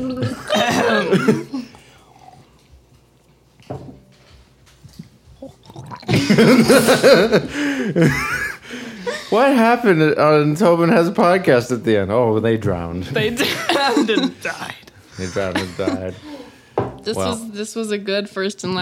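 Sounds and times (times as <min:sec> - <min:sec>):
laughter: 0:00.0 - 0:01.8, 0:06.1 - 0:09.6, 0:13.2 - 0:14.4, 0:15.2 - 0:16.5
speech: 0:01.1 - 0:01.5, 0:06.4 - 0:08.4, 0:09.3 - 0:16.3, 0:17.0 - 0:18.7
person gargling water: 0:05.4 - 0:06.4.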